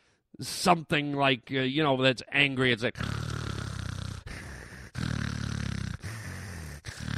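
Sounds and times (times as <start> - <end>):
speech: 0.4 - 3.2
person imitating snoring: 3.0 - 7.1.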